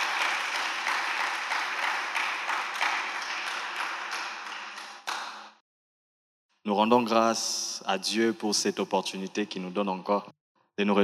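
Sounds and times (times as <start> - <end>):
congregation cheering: 0.0 - 5.3
church congregation applauding: 0.0 - 5.6
speech: 6.6 - 11.0.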